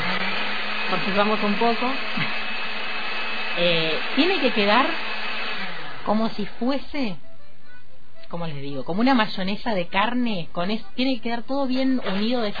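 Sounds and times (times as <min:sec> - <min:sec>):
food processor blending raw meat with pepper and seasonings: 0:00.0 - 0:07.0, 0:12.0 - 0:12.5
speech: 0:00.9 - 0:02.4, 0:03.6 - 0:05.2, 0:06.0 - 0:07.3, 0:08.3 - 0:12.5
person talking and laughing: 0:01.9 - 0:02.5.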